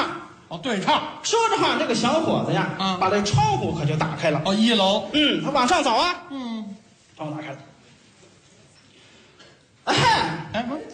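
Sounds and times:
speech: 0:00.5 - 0:06.4, 0:07.2 - 0:07.7, 0:09.8 - 0:10.9
man clearing throat: 0:09.8 - 0:10.7
man's loud deliberate cough as a secret signal: 0:09.8 - 0:10.7.

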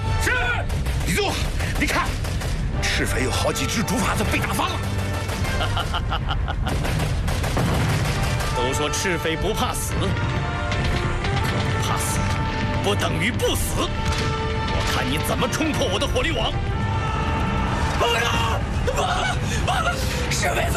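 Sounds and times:
heavy explosions in a battle: 0:00.1 - 0:20.5
machine-gun fire in a battle: 0:00.6 - 0:02.8, 0:04.5 - 0:06.0, 0:06.7 - 0:09.0
laughter: 0:05.3 - 0:07.1, 0:18.8 - 0:20.6.

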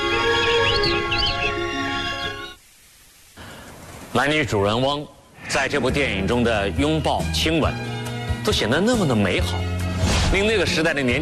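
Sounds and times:
music: 0:00.0 - 0:02.6, 0:05.5 - 0:11.2
small birds chirping in trills: 0:00.0 - 0:02.6
speech: 0:04.2 - 0:09.7, 0:10.3 - 0:11.2.

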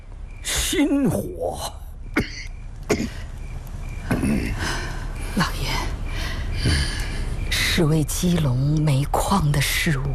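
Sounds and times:
steady low hum: 0:00.0 - 0:10.1
speech: 0:00.7 - 0:01.8, 0:07.8 - 0:10.1
person coughing hoarsely: 0:02.2 - 0:03.2.

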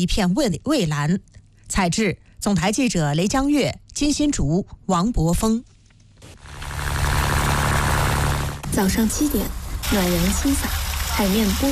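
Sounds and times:
speech: 0:00.0 - 0:06.4, 0:08.8 - 0:11.7
fishing boat motor starting in a harbour at Yazhou central fishing port in Sanya: 0:06.4 - 0:11.3.

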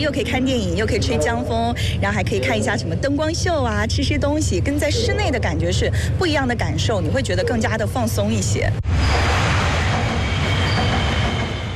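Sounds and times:
speech: 0:00.0 - 0:09.3
metro train rushing overhead on the track under a bridge approach: 0:00.0 - 0:11.7.

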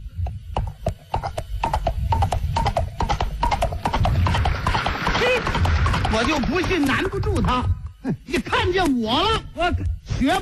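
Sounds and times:
human voice imitating galloping horse hoofbeats with mouth clicks and clops: 0:00.3 - 0:08.6
speech: 0:06.2 - 0:10.4.

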